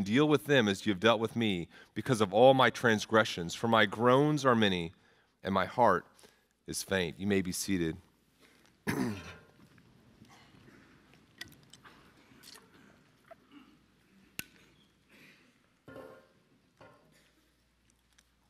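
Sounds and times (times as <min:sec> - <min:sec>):
speech: 0:00.0 - 0:06.1, 0:06.7 - 0:08.1, 0:08.8 - 0:09.4
audience members clearing their throats: 0:08.8 - 0:09.5
soft coughs: 0:08.8 - 0:09.6, 0:11.8 - 0:14.0, 0:15.1 - 0:16.3.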